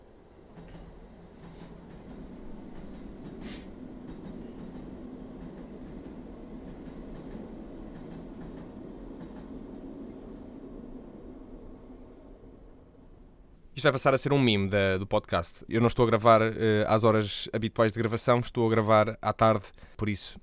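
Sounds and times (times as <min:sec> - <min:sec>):
train wheels on rails passing on a railway line: 0:00.0 - 0:14.4
speech: 0:13.8 - 0:20.4.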